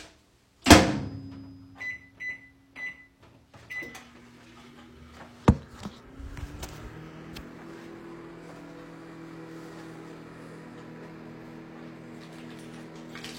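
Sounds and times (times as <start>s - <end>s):
microwave oven humming and rattling while heating a breakfast burrito: 0.7s - 13.3s
short microwave keypad beeps: 1.2s - 3.2s.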